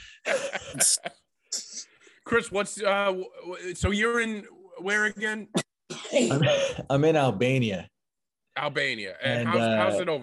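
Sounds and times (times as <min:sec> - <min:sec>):
laughter: 0:00.0 - 0:01.3
speech: 0:00.2 - 0:01.2, 0:02.3 - 0:07.9, 0:08.6 - 0:10.2
harsh phlegmy coughing fit: 0:05.5 - 0:06.9.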